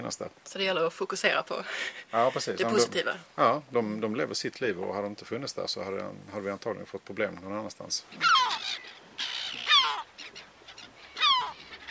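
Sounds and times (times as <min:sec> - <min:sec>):
speech: 0:00.1 - 0:08.9
gulls calling: 0:08.0 - 0:11.9.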